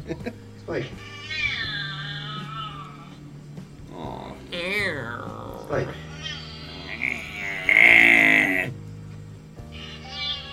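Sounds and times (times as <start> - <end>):
speech: 0.1 - 1.2, 5.7 - 6.0
cat meowing: 0.8 - 3.3, 4.1 - 8.7, 9.7 - 10.5.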